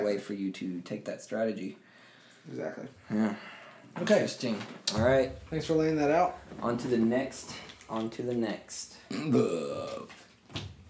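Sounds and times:
speech: 0:00.0 - 0:10.6
loud drawn-out burp with a rough voiced rumble: 0:09.1 - 0:10.1.

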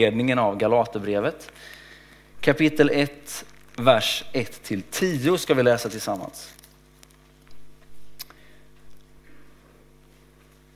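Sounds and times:
speech: 0:00.0 - 0:01.8, 0:02.4 - 0:06.6
steady low hum: 0:02.1 - 0:05.8, 0:07.4 - 0:10.6
pages of Bibles being leafed through: 0:03.2 - 0:07.4.

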